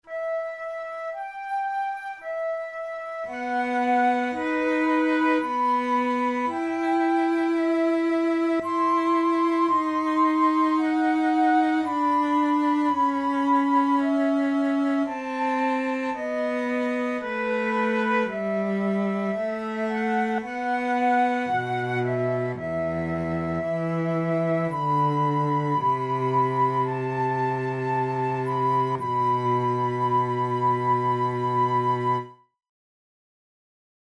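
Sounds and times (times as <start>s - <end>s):
flute sonata in E minor adagio: 0.0s - 32.5s.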